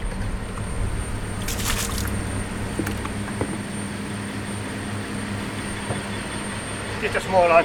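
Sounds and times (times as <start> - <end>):
fishing boat engine drone: 0.0 - 7.6
water splashing beside a fishing boat: 1.3 - 2.3
speech: 7.0 - 7.6.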